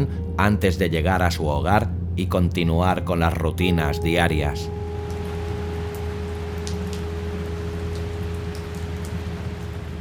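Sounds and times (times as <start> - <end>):
speech: 0.0 - 4.8
low constant hum: 0.0 - 10.0
steady rain falling at night on a cold road: 5.0 - 10.0.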